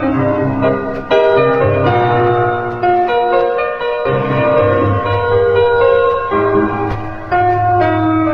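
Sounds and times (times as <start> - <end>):
sad piano loop: 0.0 - 8.3.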